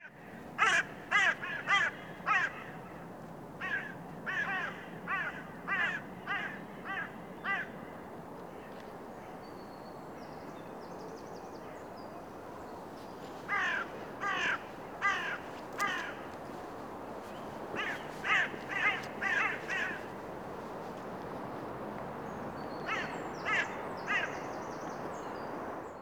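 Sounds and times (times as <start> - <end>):
bird cawing hoarsely: 0.0 - 8.1, 13.0 - 25.2
wind-like background noise: 0.3 - 25.9.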